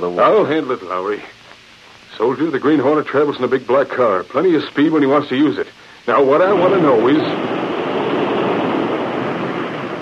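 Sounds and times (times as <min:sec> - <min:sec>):
speech: 0:00.0 - 0:01.4, 0:02.1 - 0:07.6
water rushing through a water intake being opened and shut: 0:06.1 - 0:10.0.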